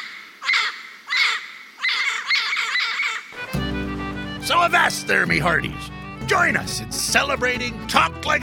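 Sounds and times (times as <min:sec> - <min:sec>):
yellow-crowned Amazon parrot squawking and screeching: 0:00.4 - 0:03.5
speech: 0:04.5 - 0:08.4.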